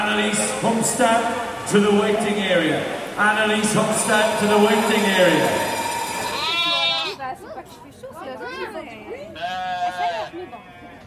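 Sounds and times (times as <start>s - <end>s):
speech: 0.2s - 5.7s
murmuring voices and crowd chatter: 1.4s - 11.0s
sheep bleating at a sheep shearing championship: 5.0s - 7.2s, 9.4s - 11.0s.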